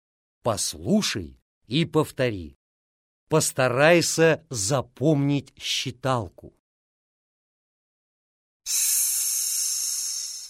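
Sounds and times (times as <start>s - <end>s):
speech: 0.4s - 2.6s, 3.3s - 6.6s, 8.7s - 9.0s
sharp hiss: 8.7s - 10.4s.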